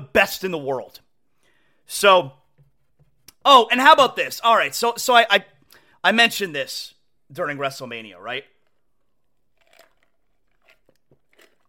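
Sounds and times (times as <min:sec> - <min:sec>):
speech: 0:00.1 - 0:01.0, 0:01.9 - 0:02.4, 0:03.4 - 0:08.5
person sipping a drink: 0:08.6 - 0:11.6.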